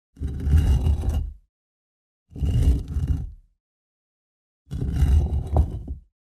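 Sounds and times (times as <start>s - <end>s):
stone dragged on stone: 0.2s - 1.5s, 2.3s - 3.5s, 4.7s - 6.1s.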